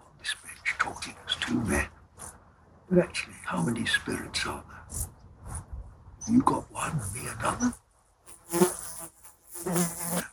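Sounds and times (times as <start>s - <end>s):
speech: 0.8s - 2.0s, 2.9s - 5.0s, 6.3s - 7.8s, 8.5s - 10.3s
fly buzzing: 8.3s - 10.3s.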